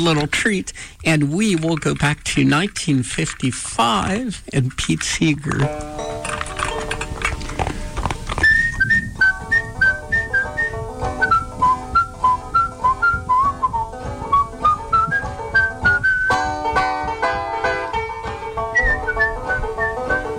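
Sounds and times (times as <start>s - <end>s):
speech: 0.0s - 6.4s
horse hooves clip-clopping on a road: 0.0s - 20.3s
farmer on a road whistling a clear bright melody: 8.4s - 16.5s, 18.6s - 20.3s.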